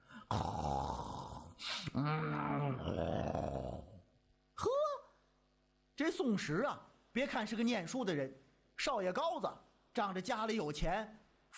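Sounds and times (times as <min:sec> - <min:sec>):
voice imitating an old Taoist priest snoring while asleep slumped on a table: 0:00.2 - 0:04.0
speech: 0:02.1 - 0:03.5, 0:06.2 - 0:11.5.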